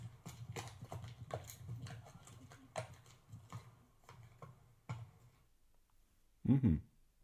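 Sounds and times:
horse hooves clip-clopping on a hard surface: 0.0s - 5.6s
speech: 6.5s - 6.9s.

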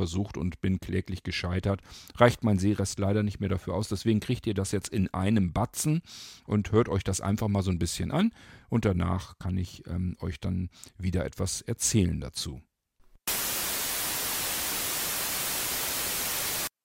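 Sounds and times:
speech: 0.0s - 12.7s
simulated tinnitus steady broadband hiss: 13.3s - 16.7s.

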